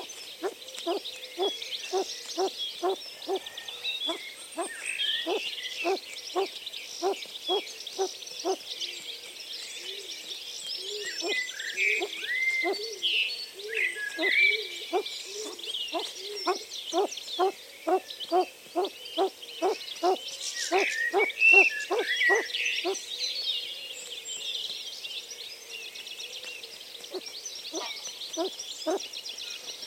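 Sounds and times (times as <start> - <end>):
chorus of high birdsong in a garden: 0.0 - 23.4, 25.9 - 29.8
low hooting call: 4.1 - 8.6, 12.0 - 12.9, 14.9 - 23.0.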